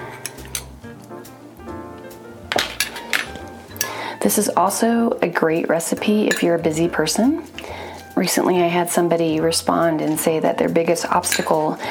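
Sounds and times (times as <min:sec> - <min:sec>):
spoon clinking while adding capers to a canned sardine dish: 0:02.6 - 0:04.0, 0:05.9 - 0:06.8, 0:11.1 - 0:11.7
speech: 0:04.2 - 0:11.8.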